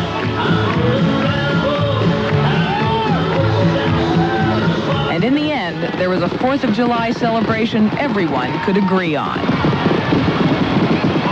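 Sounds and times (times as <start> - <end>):
large outdoor crowd cheering: 0.0 - 11.3
high whoops and shouts from a crowd: 2.5 - 5.0, 8.4 - 9.1
speech: 5.3 - 9.8.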